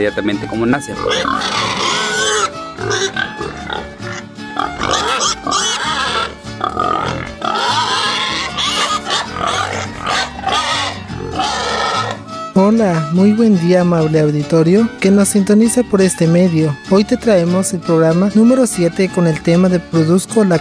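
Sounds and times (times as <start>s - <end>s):
speech: 0.0s - 2.0s, 13.1s - 20.5s
pigs grunting and oinking: 0.8s - 12.3s.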